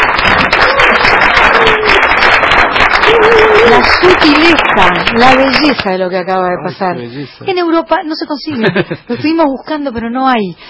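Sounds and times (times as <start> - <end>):
sustained applause from a room full of people: 0.0 - 5.9
speech: 4.1 - 10.6.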